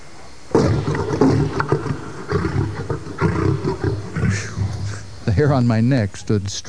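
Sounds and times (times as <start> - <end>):
male lion roaring angrily: 0.5 - 5.1
speech: 5.4 - 6.6.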